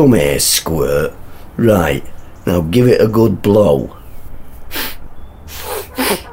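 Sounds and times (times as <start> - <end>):
speech: 0.0 - 4.0, 4.7 - 4.9
child sniffing: 4.7 - 6.3.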